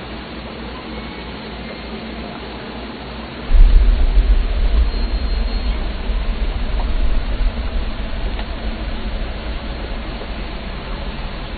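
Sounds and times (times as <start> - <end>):
earthquake rumble: 3.5 - 11.5.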